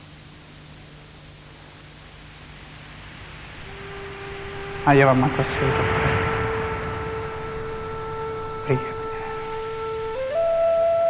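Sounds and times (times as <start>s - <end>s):
roar of the sea: 3.6s - 10.2s
speech: 4.8s - 6.1s, 8.7s - 8.9s.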